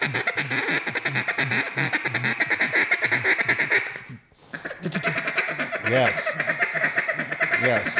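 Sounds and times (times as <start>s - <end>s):
duck call blown in a fast rolling feed chuckle: 0.0s - 7.9s
speech: 5.9s - 6.3s, 7.6s - 7.9s.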